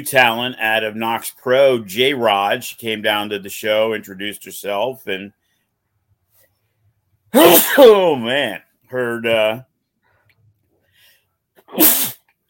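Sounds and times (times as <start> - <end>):
speech: 0.0 - 5.4, 7.3 - 9.7, 11.7 - 12.1
person sneezing: 7.4 - 8.1, 11.6 - 12.2.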